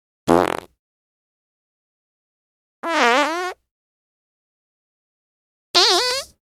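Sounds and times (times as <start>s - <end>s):
person farting: 0.3s - 0.7s, 2.8s - 3.6s, 5.8s - 6.4s.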